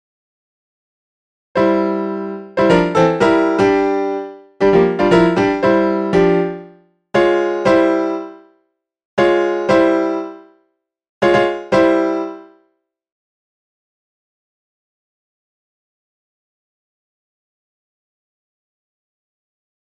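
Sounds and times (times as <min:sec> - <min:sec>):
piano piece: 0:01.6 - 0:08.5, 0:09.2 - 0:10.5, 0:11.2 - 0:12.6.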